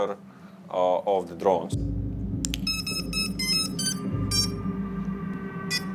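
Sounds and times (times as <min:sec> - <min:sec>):
steady low hum: 0:00.0 - 0:05.9
drone video detector alarm beeping: 0:02.6 - 0:04.7, 0:05.7 - 0:05.9.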